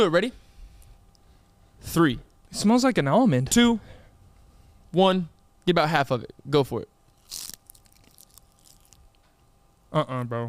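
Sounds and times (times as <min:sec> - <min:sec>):
speech: 0:00.0 - 0:00.4, 0:01.8 - 0:04.0, 0:04.9 - 0:06.9, 0:09.9 - 0:10.4
biting and chewing dried seaweed: 0:07.1 - 0:09.2.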